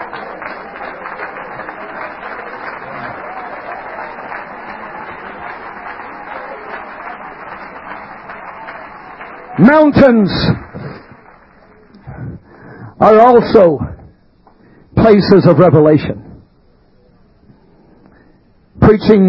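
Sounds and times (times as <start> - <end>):
audience clapping hands: 0.0 - 12.1
crowd murmur: 0.0 - 12.8
speech: 9.6 - 10.6, 13.0 - 13.9, 15.1 - 16.2, 19.0 - 19.2.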